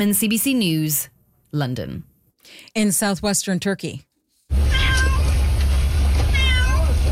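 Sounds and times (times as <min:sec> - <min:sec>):
speech: 0:00.0 - 0:04.6
cat meowing: 0:04.7 - 0:05.4, 0:06.3 - 0:07.0.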